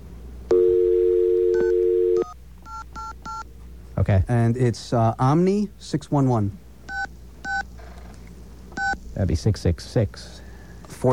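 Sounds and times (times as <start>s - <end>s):
telephone dial tone: 0.5s - 2.8s
telephone keypad beeps: 1.5s - 3.4s, 6.9s - 7.6s, 8.8s - 9.0s
speech: 4.0s - 6.6s, 9.2s - 10.4s.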